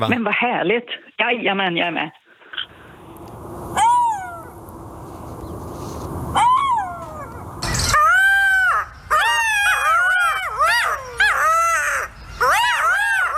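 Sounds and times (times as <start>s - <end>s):
speech: 0.0s - 2.2s
chorus of golden jackal yips and howls: 3.7s - 4.6s, 6.3s - 13.3s
golden jackal rising-and-falling wails: 6.4s - 13.3s.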